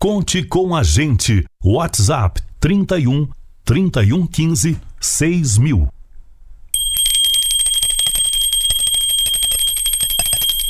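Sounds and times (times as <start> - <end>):
speech: 0.0 - 6.0
small school recess hand bell ringing: 6.8 - 10.6.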